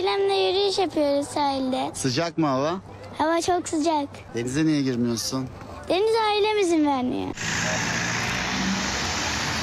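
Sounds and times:
speech: 0:00.0 - 0:08.0
road traffic of holiday cars queuing in a long line at a town entrance: 0:07.0 - 0:09.6.

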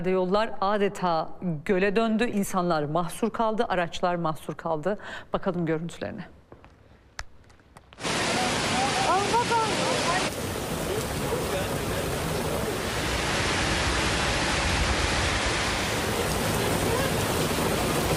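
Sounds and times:
speech: 0:00.0 - 0:06.4
heavy rain downpour during a sudden summer storm in Istanbul: 0:08.0 - 0:18.1.

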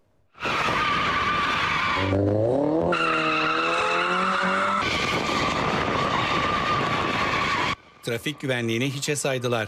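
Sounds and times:
car tires squealing while drifting on a public road: 0:00.4 - 0:07.8
car engine noise during street drifting: 0:00.4 - 0:08.0
speech: 0:02.0 - 0:02.4, 0:08.1 - 0:09.6.

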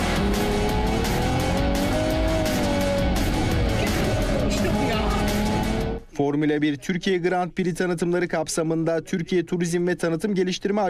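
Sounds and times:
car engine roaring on a race track: 0:00.0 - 0:06.0
speech: 0:06.3 - 0:10.8.

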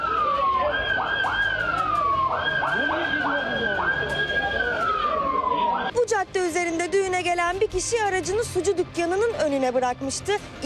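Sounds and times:
ambulance siren wailing on a street in Ümraniye Istanbul: 0:00.0 - 0:05.9
speech: 0:06.4 - 0:10.6.

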